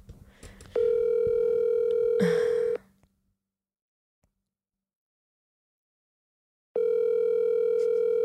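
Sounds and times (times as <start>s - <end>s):
outgoing phone call ringing tone: 0.8s - 2.8s, 6.8s - 8.2s.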